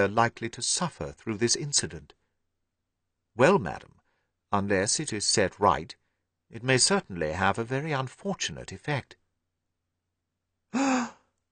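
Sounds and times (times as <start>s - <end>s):
speech: 0.0s - 2.2s, 3.4s - 9.2s, 10.7s - 11.2s
woman's sharp gasp: 10.7s - 11.3s.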